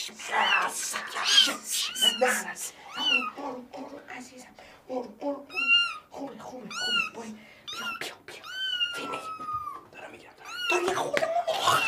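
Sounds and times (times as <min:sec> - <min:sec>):
speech: 0:00.0 - 0:07.4
cat meowing: 0:00.4 - 0:03.3, 0:05.5 - 0:06.1, 0:06.7 - 0:11.0, 0:11.6 - 0:11.8.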